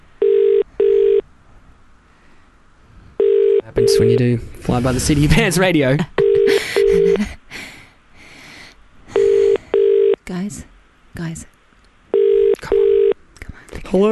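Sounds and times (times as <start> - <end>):
phone line ringing out in double-burst tones: 0.2 - 1.2, 3.2 - 4.2, 6.2 - 7.2, 9.1 - 10.2, 12.1 - 13.2
speech: 3.8 - 7.4, 10.5 - 11.6.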